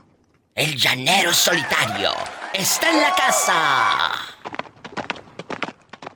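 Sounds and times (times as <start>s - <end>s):
speech: 0.6s - 4.4s
horse hooves galloping: 2.2s - 6.1s.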